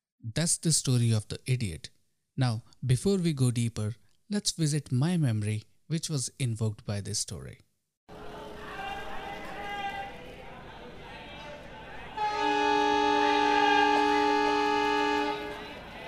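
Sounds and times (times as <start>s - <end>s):
speech: 0.2s - 7.6s
murmur of voices on a busy railway platform: 8.1s - 12.2s, 15.2s - 16.0s
loud sustained train horn at a railway platform: 12.2s - 16.0s.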